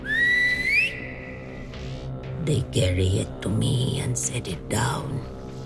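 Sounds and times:
person whistling a rising signal: 0.0s - 1.6s
speech: 2.4s - 5.4s.

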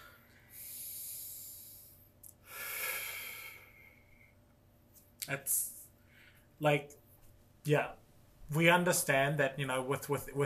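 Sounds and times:
deep breaths: 0.0s - 4.4s, 6.0s - 6.6s
speech: 5.3s - 5.8s, 6.6s - 7.0s, 7.6s - 10.4s.

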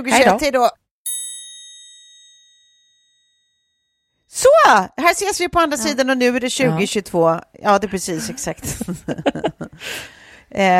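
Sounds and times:
speech: 0.0s - 0.8s, 4.3s - 10.7s
bright high bell strike rung to out the year: 1.1s - 4.1s
laughter: 8.1s - 9.8s.

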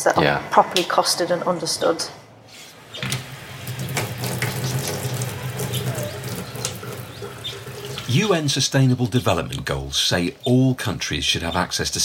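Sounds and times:
speech: 0.0s - 2.2s, 8.1s - 12.0s
water gushing from a communal tap: 2.8s - 8.3s
birds in the outdoors: 4.9s - 8.1s.

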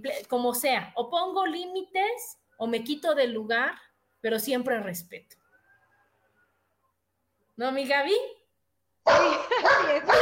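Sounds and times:
speech: 0.0s - 5.4s, 7.6s - 8.4s, 9.0s - 10.2s
dogs barking and yipping frantically: 9.1s - 10.2s.

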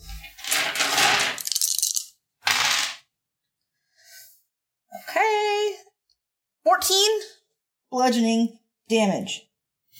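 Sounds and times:
plastic eight-sided dice clattering across a hard tabletop: 0.4s - 3.0s
speech: 6.8s - 9.5s.

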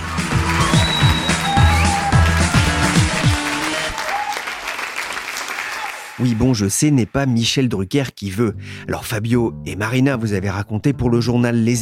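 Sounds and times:
audience applause: 0.0s - 6.5s
speech: 6.2s - 11.8s.

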